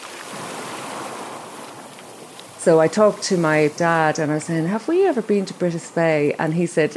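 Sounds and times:
ocean waves at the seaside: 0:00.0 - 0:06.9
speech: 0:02.6 - 0:06.9.

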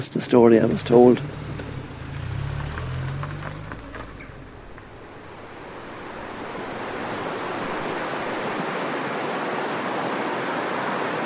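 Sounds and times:
speech: 0:00.0 - 0:01.4
low rumbling tones: 0:00.4 - 0:08.5
river water rushing: 0:00.6 - 0:11.2.

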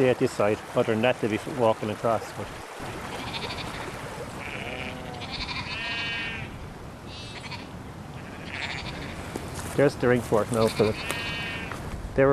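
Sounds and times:
speech: 0:00.0 - 0:02.9, 0:09.8 - 0:11.2, 0:12.2 - 0:12.3
sheep bleating in a field beside an ancient ring fort: 0:03.0 - 0:09.3, 0:10.5 - 0:11.8.

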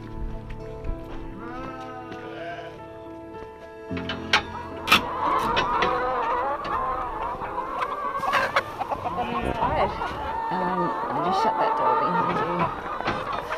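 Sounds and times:
crowd of hens clucking and murmuring: 0:03.8 - 0:13.5.

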